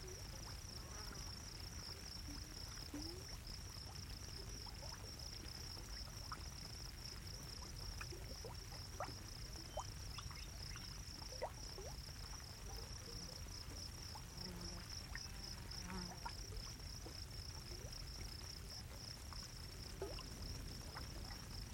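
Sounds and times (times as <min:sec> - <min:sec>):
crickets trilling around a geothermal pool in a sagebrush desert in the evening: 0:00.0 - 0:21.7
water bubbling in a geothermal pool: 0:00.2 - 0:21.7.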